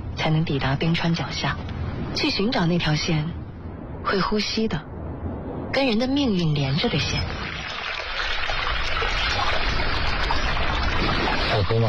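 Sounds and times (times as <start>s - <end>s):
speech: 0.2s - 3.4s, 4.0s - 4.9s, 5.8s - 7.4s, 11.5s - 11.8s
small mountain stream trickling: 6.6s - 11.8s.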